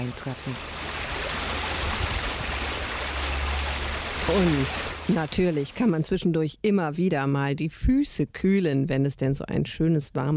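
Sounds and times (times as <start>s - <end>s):
speech: 0.0s - 0.9s, 4.2s - 10.3s
small river babbling and splashing: 0.0s - 5.9s
low rumble of flowing water: 0.0s - 6.1s.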